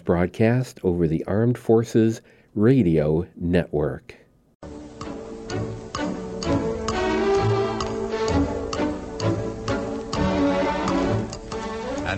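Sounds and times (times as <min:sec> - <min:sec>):
speech: 0:00.0 - 0:04.2
sustained musical tones: 0:04.6 - 0:12.1
clock ticking: 0:04.8 - 0:12.1.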